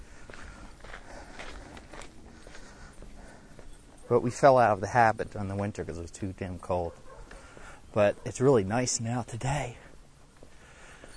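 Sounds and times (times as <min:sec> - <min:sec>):
footsteps on a daily walk: 0:00.0 - 0:06.0, 0:06.8 - 0:08.2, 0:09.8 - 0:11.1
speech: 0:04.1 - 0:07.1, 0:07.9 - 0:09.8.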